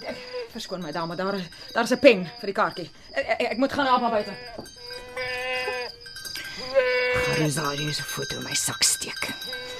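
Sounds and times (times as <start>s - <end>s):
speech: 0.6s - 4.7s, 7.4s - 9.7s
goat bleating: 3.9s - 6.0s, 6.7s - 7.6s.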